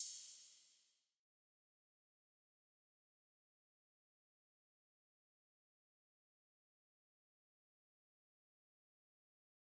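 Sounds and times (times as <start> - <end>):
drum loop with crash cymbal: 0.0 - 0.6.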